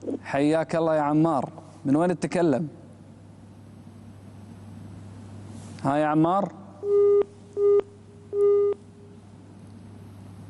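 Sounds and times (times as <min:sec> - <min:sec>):
speech: 0:00.3 - 0:02.8, 0:05.8 - 0:07.8
telephone busy tone after a dropped call on a phone-in line: 0:08.4 - 0:08.8.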